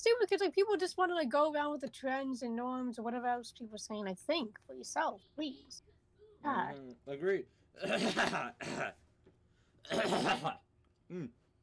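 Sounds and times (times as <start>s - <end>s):
speech: 0.0s - 9.0s, 9.8s - 11.4s
person clearing throat: 7.8s - 9.0s, 9.9s - 11.4s.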